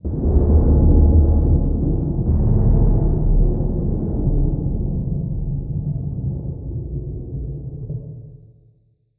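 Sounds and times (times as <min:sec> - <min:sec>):
distant structural explosion: 0:00.1 - 0:06.0.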